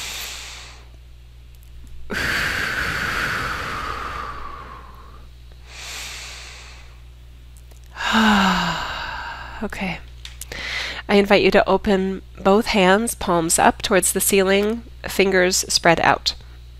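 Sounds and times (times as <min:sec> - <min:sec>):
slow deep breaths in through the nose and out through the mouth: 0:00.0 - 0:01.0, 0:02.1 - 0:07.0, 0:07.9 - 0:09.6, 0:10.5 - 0:11.0
speech: 0:09.6 - 0:10.1, 0:11.1 - 0:16.4.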